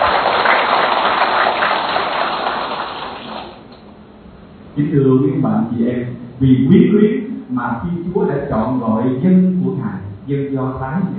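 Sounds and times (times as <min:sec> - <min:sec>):
parish audience clapping: 0:00.0 - 0:03.8
speech: 0:04.8 - 0:11.1.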